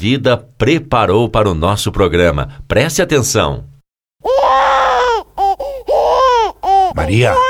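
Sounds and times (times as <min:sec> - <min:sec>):
speech: 0:00.0 - 0:04.6, 0:06.9 - 0:07.4
baby wailing and sobbing: 0:04.2 - 0:07.4.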